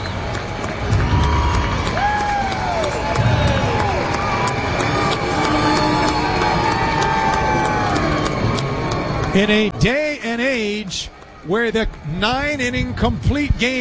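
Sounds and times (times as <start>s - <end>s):
applause: 0.0s - 13.8s
baseball stadium crowd cheering after final out: 0.0s - 13.8s
crowd shouting: 0.9s - 9.7s
speech: 9.4s - 13.8s.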